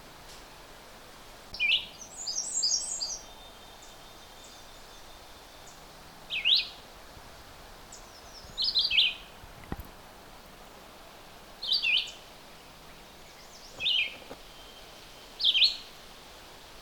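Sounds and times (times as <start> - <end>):
red-eyed vireo singing: 1.6 - 6.8, 8.0 - 9.3, 11.6 - 12.2, 13.2 - 15.9.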